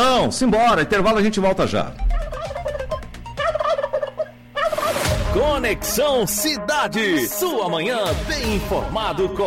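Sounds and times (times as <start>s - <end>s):
speech: 0.0s - 2.1s, 5.3s - 9.4s
turkey gobbling: 2.0s - 5.1s.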